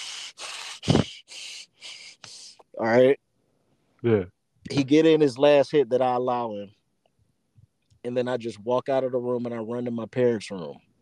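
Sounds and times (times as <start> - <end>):
voice imitating hard angry breathing: 0.0 - 2.6
speech: 2.8 - 3.2, 4.0 - 6.8, 8.0 - 10.9.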